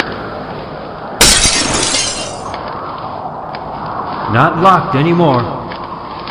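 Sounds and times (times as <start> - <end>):
house window glass being broken and shattering: 1.2 - 2.5
speech: 4.3 - 5.6.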